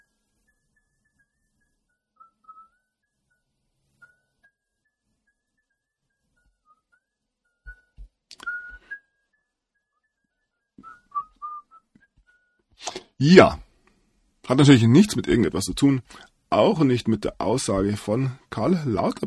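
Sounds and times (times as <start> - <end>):
man whistling a song melody: 2.2 - 3.2, 6.4 - 12.6
speech: 13.2 - 13.6, 14.5 - 19.2.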